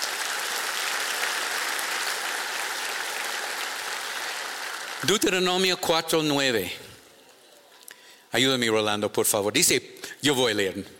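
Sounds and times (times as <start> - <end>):
audience applauding: 0.0 - 5.5
speech: 5.0 - 6.9, 8.3 - 10.9.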